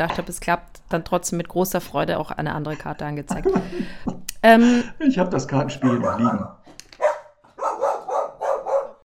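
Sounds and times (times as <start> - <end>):
speech: 0.0 - 6.6
dog barking: 5.8 - 9.1.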